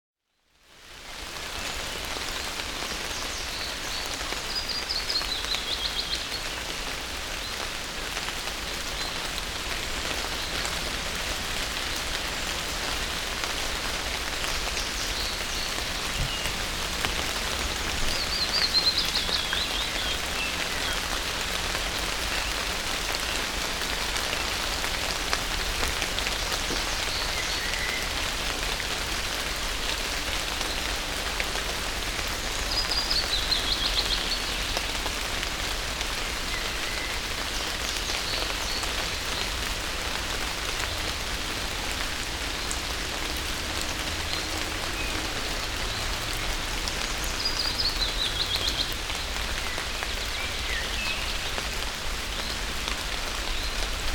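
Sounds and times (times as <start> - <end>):
rain in a forest: 0.2 - 54.1.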